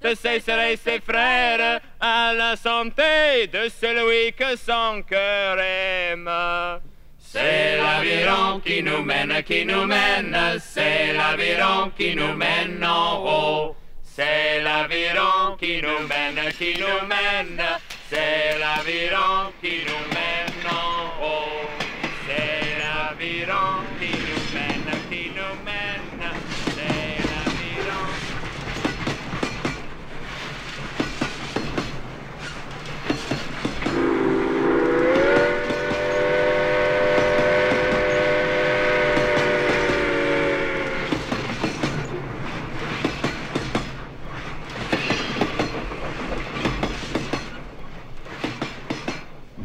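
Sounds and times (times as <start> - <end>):
speech: 0.0 - 21.7
train wheels clickety-clack on rails: 16.0 - 49.6
train horn blast: 33.9 - 41.3.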